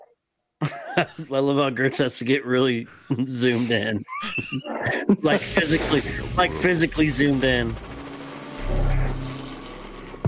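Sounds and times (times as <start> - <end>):
laughter: 0.6 - 1.4, 2.9 - 6.8
speech: 0.6 - 7.9
helicopter engine rumble: 5.4 - 10.2.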